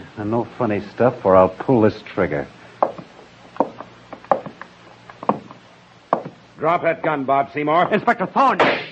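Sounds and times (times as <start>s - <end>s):
speech: 0.2s - 2.6s, 6.6s - 8.8s
knocks on a wooden door: 2.8s - 4.6s, 6.1s - 6.4s.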